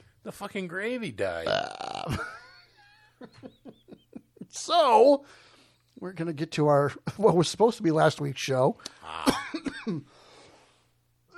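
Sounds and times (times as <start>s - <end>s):
speech: 0.2s - 2.4s, 3.2s - 3.7s, 4.5s - 10.2s
harsh coughs: 9.2s - 10.1s.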